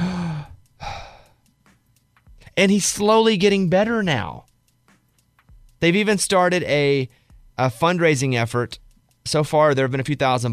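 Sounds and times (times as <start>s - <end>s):
voice imitating the gasping breath of a patient: 0.0s - 1.4s
speech: 2.6s - 4.5s, 5.8s - 10.5s.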